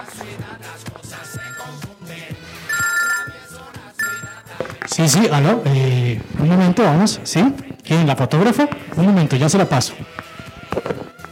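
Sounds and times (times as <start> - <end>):
busy sound: 0.0 - 10.6
telephone ringing with an electronic ringtone: 1.1 - 5.7
speech: 5.0 - 10.1.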